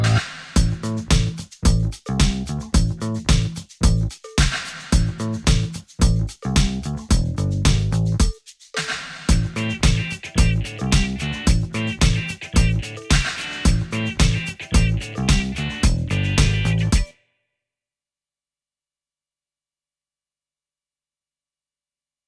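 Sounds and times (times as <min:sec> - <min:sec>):
rhythmic background music: 0:00.2 - 0:17.1.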